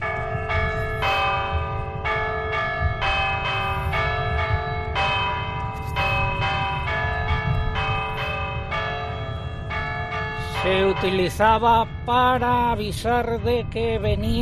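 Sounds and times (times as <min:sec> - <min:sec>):
church bells tolling storm warning: 0:00.0 - 0:14.4
speech: 0:11.0 - 0:14.4.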